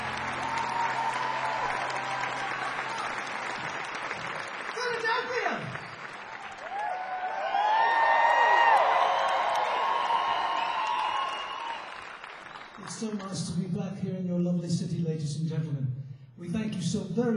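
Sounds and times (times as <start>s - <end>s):
crowd cheers and whistles: 0.0s - 4.0s, 4.9s - 12.8s
loud sustained applause from a large crowd: 0.0s - 13.6s
speech: 13.0s - 17.3s.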